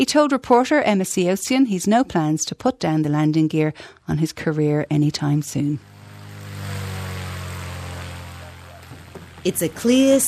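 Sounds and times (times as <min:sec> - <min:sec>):
speech: 0:00.0 - 0:05.9, 0:09.4 - 0:10.2
1950 de Havilland Chipmunk propeller plane engine running: 0:04.4 - 0:10.2.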